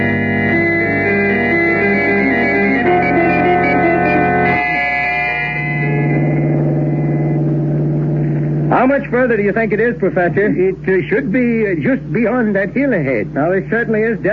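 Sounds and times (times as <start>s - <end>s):
hired car engine droning on a rough road in Montana: 0.0s - 14.3s
speech: 8.8s - 14.3s.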